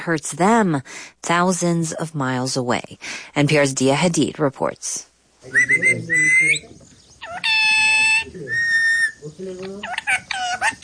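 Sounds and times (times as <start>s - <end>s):
speech: 0.0s - 6.9s, 8.2s - 10.8s
pet parrot calling with squawky chatter and whistles: 5.5s - 9.2s, 9.8s - 10.8s.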